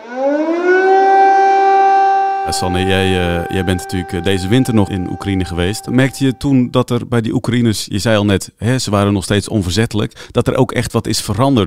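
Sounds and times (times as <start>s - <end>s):
air raid siren wailing: 0.0s - 6.5s
speech: 2.5s - 11.6s.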